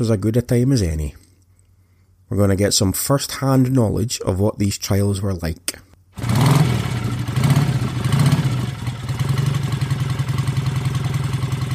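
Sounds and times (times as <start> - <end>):
speech: 0.0 - 1.2, 2.3 - 6.6
motorcycle engine revving as a ride begins: 6.2 - 11.7.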